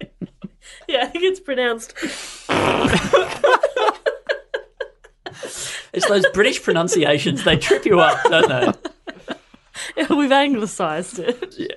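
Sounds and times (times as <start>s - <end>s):
laughter: 0.0s - 0.8s, 2.8s - 11.7s
speech: 0.6s - 3.6s, 6.0s - 8.8s, 10.1s - 11.7s
fart noise: 2.5s - 3.4s.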